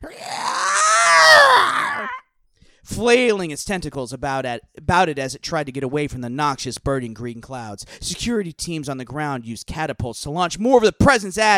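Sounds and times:
person voicing a monster's pained scream: 0.0 - 2.2
speech: 2.9 - 11.5.

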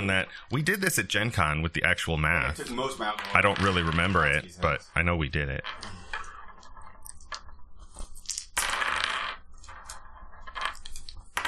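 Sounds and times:
speech: 0.0 - 6.0
dice rolling across a hard tabletop: 3.0 - 4.4, 5.6 - 11.4.

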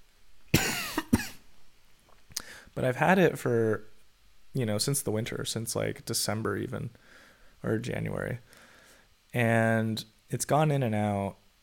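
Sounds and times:
person coughing a dry non-productive cough: 0.6 - 1.4
speech: 2.8 - 3.9, 4.5 - 8.6, 9.3 - 11.4.

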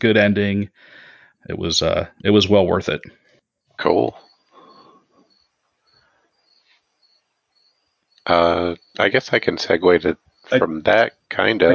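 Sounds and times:
speech: 0.0 - 3.2, 3.8 - 4.3, 8.2 - 11.7
faint crickets chirping through an open window: 3.8 - 11.7.

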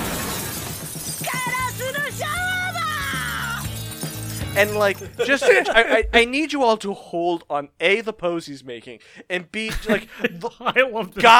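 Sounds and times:
tinkling glass shards: 0.0 - 5.3
glass shattering from a thrown rock: 0.0 - 5.4
speech: 4.6 - 11.3
laughter: 5.0 - 6.3, 9.7 - 11.3.

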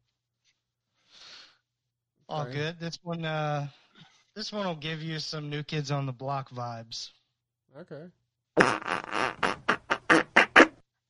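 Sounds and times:
speech: 2.3 - 3.8, 4.4 - 9.2
fart noises: 8.6 - 10.8.

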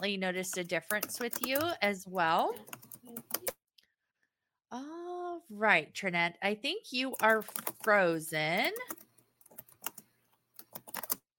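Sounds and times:
speech: 0.0 - 3.5, 4.7 - 9.0
computer keyboard typing picked up by a microphone on an online call: 0.0 - 3.6, 7.0 - 11.3.

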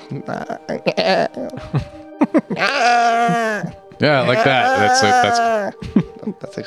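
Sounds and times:
speech: 0.1 - 6.6
person imitating a deer's bleat: 2.6 - 5.7.

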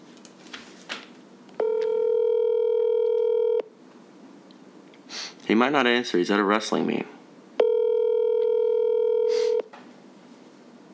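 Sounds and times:
faint handling noise: 0.0 - 2.0
telephone dial tone while calling a friend: 1.6 - 3.7, 7.6 - 9.7
speech: 5.5 - 7.2.

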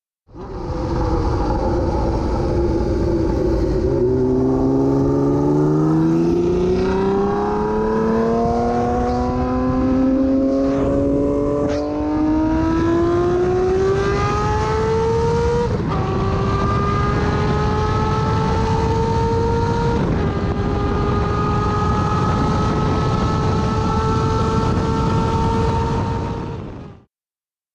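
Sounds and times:
Honda CBX 1000 motorcycle with straight pipes revving hard: 0.3 - 27.0.

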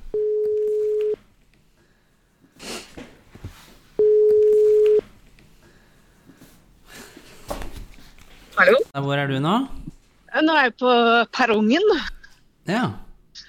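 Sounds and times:
telephone ringback tone beeps while a call is placed: 0.1 - 1.2, 4.0 - 5.0
speech: 9.0 - 9.8, 10.4 - 12.1, 12.7 - 13.0.

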